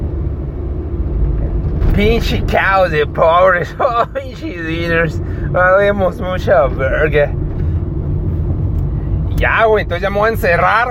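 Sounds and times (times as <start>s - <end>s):
passing car traffic rumbling: 0.0s - 10.8s
speech: 2.0s - 7.4s, 9.4s - 10.8s
laughter: 3.6s - 4.5s.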